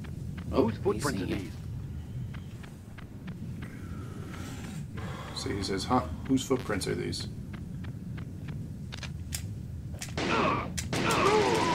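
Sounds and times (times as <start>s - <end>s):
video game ambience: 0.0s - 11.7s
speech: 0.5s - 1.6s, 5.4s - 7.4s
gunshots fired in a video game: 10.0s - 11.7s.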